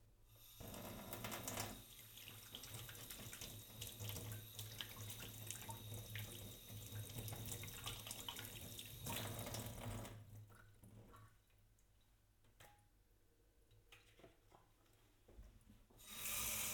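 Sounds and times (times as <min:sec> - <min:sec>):
very cold tap water running into a plastic tub: 0:00.3 - 0:11.7, 0:15.9 - 0:16.7.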